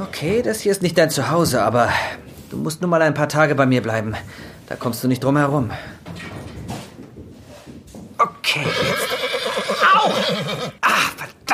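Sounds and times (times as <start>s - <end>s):
speech: 0.0s - 6.2s
horse whinnying with long wavering neigh: 8.2s - 10.9s.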